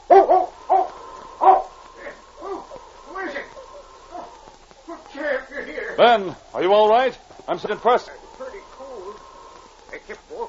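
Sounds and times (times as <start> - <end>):
dog barking at a crack in a cliff along a mountain trail: 0.1 - 2.8, 4.1 - 4.4
speech: 6.0 - 8.2.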